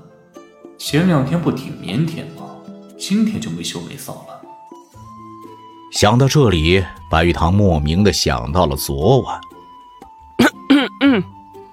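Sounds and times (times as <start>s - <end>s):
speech: 0.8s - 4.5s, 5.9s - 9.5s, 11.1s - 11.4s
two people coughing in an audio drama: 10.4s - 11.4s.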